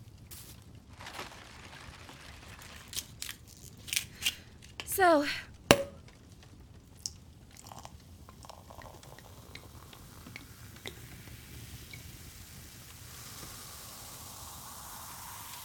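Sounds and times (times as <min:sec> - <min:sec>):
champagne being poured and fizzing: 0:01.0 - 0:06.0, 0:07.0 - 0:15.6
speech: 0:05.0 - 0:05.5
sharp clink: 0:05.6 - 0:06.0.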